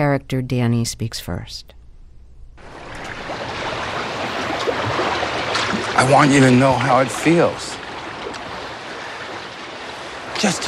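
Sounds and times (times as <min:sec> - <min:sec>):
speech: 0:00.0 - 0:01.8, 0:06.0 - 0:07.8, 0:10.4 - 0:10.6
ocean surf rolling along the shoreline in the Florida Keys: 0:02.6 - 0:10.6.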